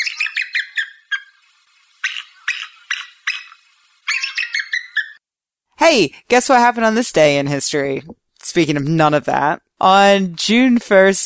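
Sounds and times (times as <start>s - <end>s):
eagle calling: 0.0s - 5.2s
speech: 5.8s - 11.2s.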